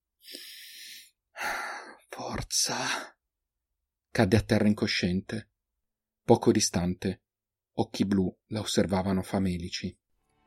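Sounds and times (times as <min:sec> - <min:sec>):
deep breath: 0:00.2 - 0:02.0
speech: 0:02.6 - 0:03.1, 0:04.2 - 0:05.5, 0:06.3 - 0:07.2, 0:07.8 - 0:10.0.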